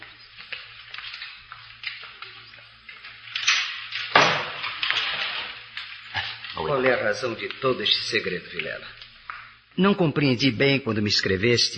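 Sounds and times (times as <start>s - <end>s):
steady low hum and hiss: 0.0s - 11.7s
door pushed shut with a dull thud: 4.1s - 4.6s
speech: 6.7s - 9.0s, 9.8s - 11.7s.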